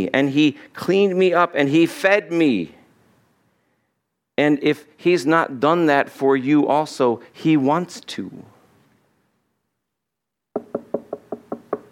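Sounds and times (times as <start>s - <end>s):
speech: 0.0s - 2.8s, 4.4s - 8.6s
knocking on a door: 10.6s - 11.9s.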